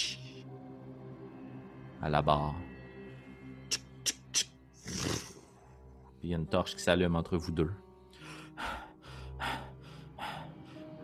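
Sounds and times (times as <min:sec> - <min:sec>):
speech: 0:02.0 - 0:02.7, 0:06.2 - 0:07.8
heavy panting breaths: 0:08.1 - 0:11.0.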